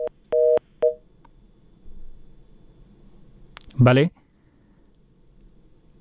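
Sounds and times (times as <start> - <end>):
telephone line tones after a radio phone-in call is cut off: 0.0 - 1.0
speech: 3.8 - 4.2.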